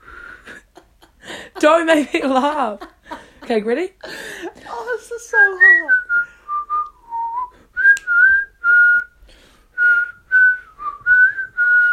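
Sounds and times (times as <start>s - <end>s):
speech: 1.6s - 2.9s, 3.5s - 4.2s
person whistling a halting uneven tune: 5.6s - 9.2s, 9.8s - 11.9s.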